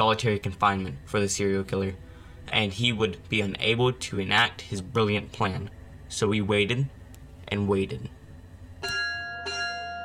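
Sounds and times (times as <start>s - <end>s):
speech: 0.1s - 8.2s
prison bell tolling: 8.8s - 10.0s.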